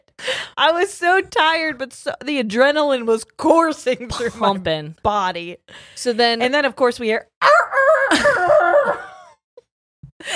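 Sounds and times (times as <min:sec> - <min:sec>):
speech: 0:00.6 - 0:07.3
rooster crowing in the morning: 0:07.4 - 0:09.0.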